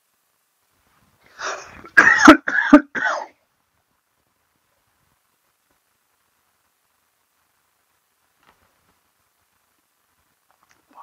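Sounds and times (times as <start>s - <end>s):
harsh coughs: 1.8s - 3.3s.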